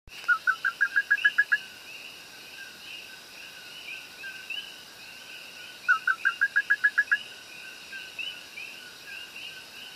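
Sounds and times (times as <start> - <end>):
Eleutherodactylus cooki calls echoing in caves in Juncos Puerto Rico: 0.3 - 1.7, 5.7 - 9.9.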